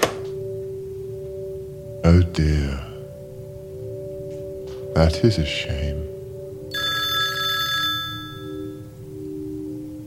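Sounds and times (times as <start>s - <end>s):
speech: 2.1s - 2.9s, 5.0s - 6.1s
old-style telephone bell ringing: 6.7s - 8.9s.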